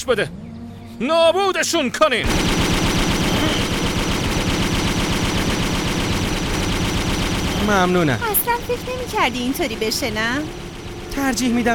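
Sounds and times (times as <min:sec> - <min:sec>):
speech: 0:00.0 - 0:00.4, 0:01.0 - 0:02.8, 0:07.7 - 0:10.6, 0:11.2 - 0:11.7
sustained rapid automatic gunfire: 0:02.2 - 0:11.1.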